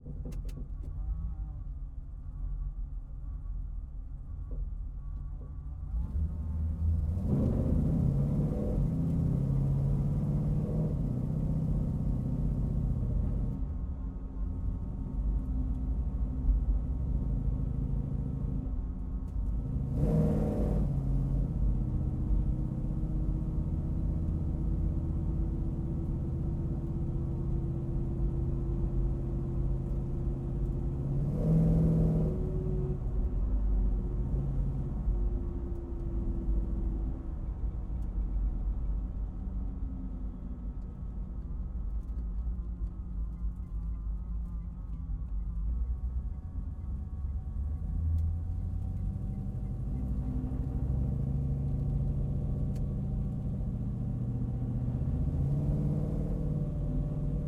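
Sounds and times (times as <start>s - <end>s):
1971 Dodge Challenger R-T driving, heard onboard from the interior: 0.0s - 57.4s.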